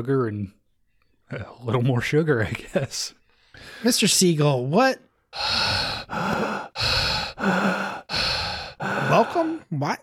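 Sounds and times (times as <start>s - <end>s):
speech: 0.0s - 0.6s, 1.3s - 7.9s, 9.1s - 10.0s
heavy breathing from someone out of breath: 5.3s - 9.7s.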